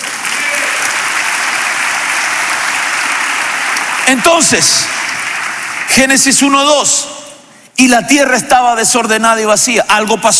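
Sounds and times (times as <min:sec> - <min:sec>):
congregation applauding: 0:00.0 - 0:07.0
speech: 0:04.1 - 0:05.0, 0:05.9 - 0:07.1, 0:07.8 - 0:10.3.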